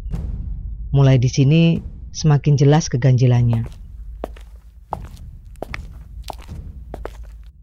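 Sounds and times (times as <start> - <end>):
speech: 0.9 - 3.8
footsteps walking into an alley: 3.5 - 7.6.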